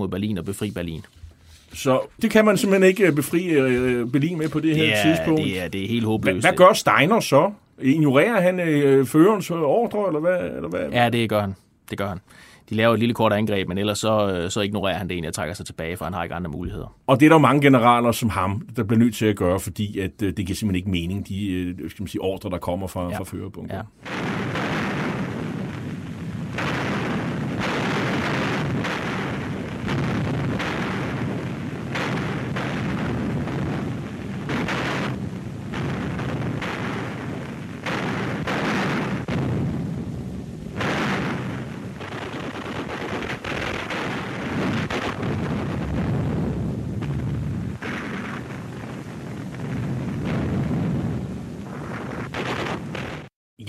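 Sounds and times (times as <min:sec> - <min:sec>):
speech: 0:00.0 - 0:24.6
explosions: 0:01.8 - 0:07.3, 0:23.9 - 0:53.6
crackling gunfire: 0:01.9 - 0:07.1, 0:24.0 - 0:53.3
booming artillery blasts: 0:02.2 - 0:07.2, 0:24.0 - 0:53.3.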